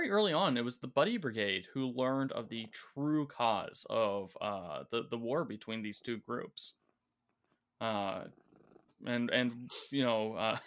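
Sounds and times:
speech: 0.1s - 6.8s, 7.8s - 8.4s, 9.0s - 10.6s
cat purring: 6.0s - 10.3s.

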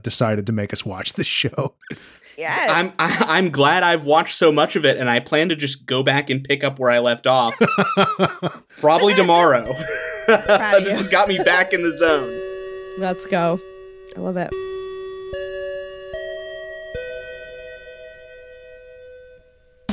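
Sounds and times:
speech: 0.0s - 12.4s, 13.0s - 14.7s
laughter: 1.8s - 3.6s, 7.3s - 12.4s
bell chime ringing clear sustained tones: 9.0s - 14.3s.

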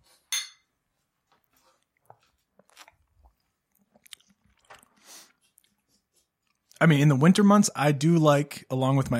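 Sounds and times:
glassy clink: 0.3s - 0.7s
speech: 6.8s - 9.1s.

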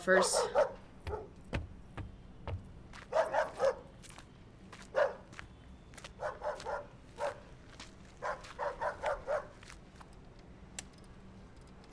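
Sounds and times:
speech: 0.0s - 0.8s
dog barking in yappy bursts: 0.0s - 1.5s, 3.0s - 4.0s, 4.8s - 5.4s, 6.1s - 7.6s, 8.2s - 9.7s.

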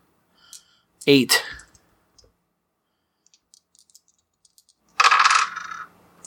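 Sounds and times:
speech: 1.0s - 1.5s
dice rolling on a hard tabletop: 3.3s - 6.2s.

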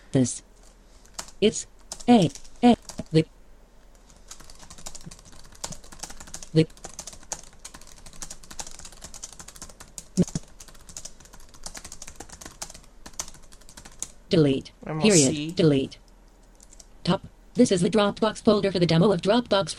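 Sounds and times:
speech: 0.1s - 0.5s, 1.4s - 3.3s, 6.6s - 6.8s, 14.3s - 16.0s, 17.1s - 19.7s
message typed on a computer keyboard: 1.0s - 3.2s, 4.1s - 14.2s, 16.5s - 16.9s.

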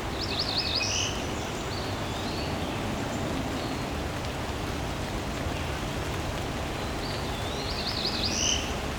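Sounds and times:
Cerulean Warbler nasal buzzy rising song: 0.0s - 4.0s, 6.8s - 8.8s
steady rain-like noise: 0.0s - 8.9s.

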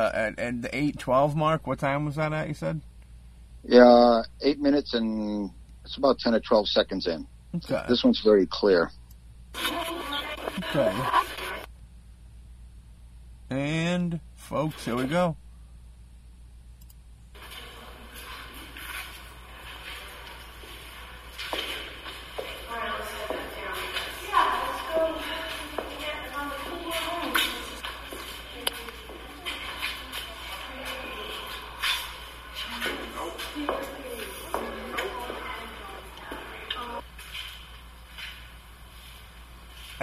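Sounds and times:
speech: 0.0s - 2.9s, 3.6s - 9.0s, 9.6s - 10.0s, 10.7s - 11.2s, 13.5s - 15.4s
shuffling footsteps in a played recording: 17.3s - 40.0s
indistinct murmuring: 17.4s - 37.0s.

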